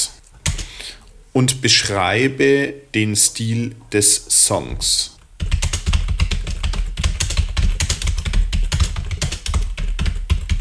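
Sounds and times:
typing on a computer keyboard: 0.4s - 0.7s, 5.4s - 10.5s
speech: 1.3s - 5.2s.

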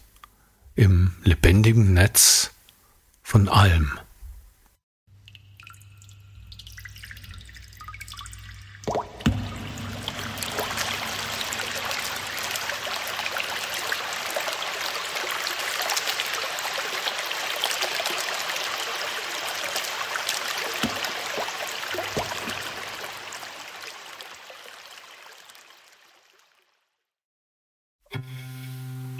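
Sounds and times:
speech: 0.8s - 2.5s, 3.3s - 4.1s
flowing stream water rushing over rocks: 9.3s - 25.2s.

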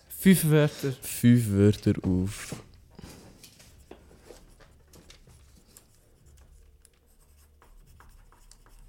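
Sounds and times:
speech: 0.2s - 2.6s
pen scratching on paper while writing: 4.4s - 8.8s.

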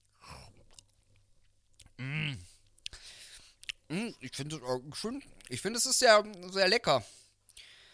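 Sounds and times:
chewing a torn-off piece of food: 0.4s - 2.0s, 2.6s - 3.9s
short voiced hum: 2.0s - 2.5s
speech: 4.2s - 7.2s.

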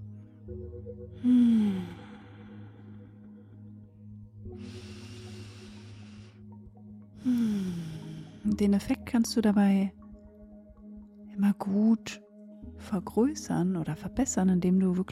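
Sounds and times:
low steady hum: 0.0s - 15.1s
speech: 0.5s - 2.2s, 4.5s - 5.1s, 8.6s - 10.0s, 11.4s - 12.2s, 12.8s - 15.1s
person breathing in and out: 1.2s - 3.8s, 4.5s - 6.6s, 7.2s - 8.5s.

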